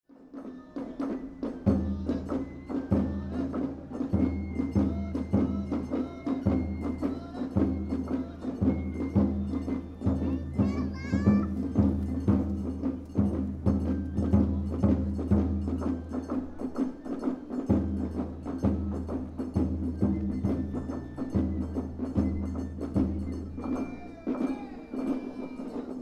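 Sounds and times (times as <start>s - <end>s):
drumming: 0.1s - 25.9s.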